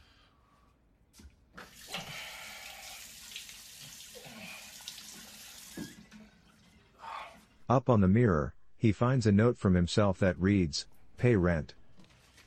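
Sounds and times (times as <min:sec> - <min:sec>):
water running from a sink tap: 0:01.6 - 0:06.8
speech: 0:07.7 - 0:11.8.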